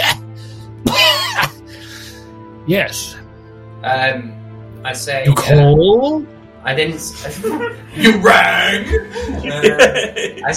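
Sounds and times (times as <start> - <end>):
voice imitating a wet phlegmy cough into a handkerchief: 0.8 - 1.6
speech: 2.7 - 3.2, 3.8 - 10.5
laughter: 7.1 - 10.5.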